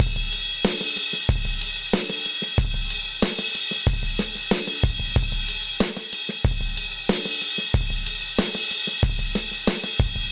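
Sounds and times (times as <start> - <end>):
old school ride cymbal beat at 93 bpm: 0.0 - 10.3.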